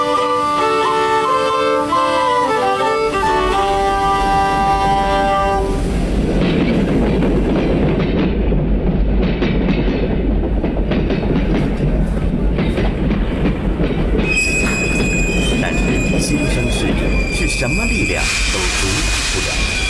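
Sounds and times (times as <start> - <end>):
rhythmic clattering of steam train on rails: 0.0 - 19.8
steam train rumbling on rails: 0.0 - 19.8
high metallic wheel squeal of steam train: 14.2 - 19.8.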